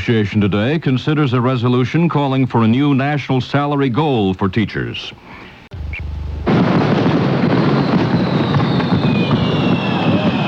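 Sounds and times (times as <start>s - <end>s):
speech: 0.0s - 5.5s
fireworks exploding in the sky: 6.4s - 10.4s.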